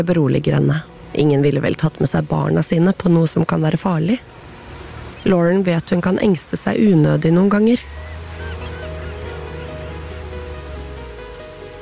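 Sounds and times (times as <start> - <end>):
speech: 0.0 - 4.4, 5.2 - 8.0
ocean surf: 4.0 - 11.8
faint bird honks: 7.8 - 10.3.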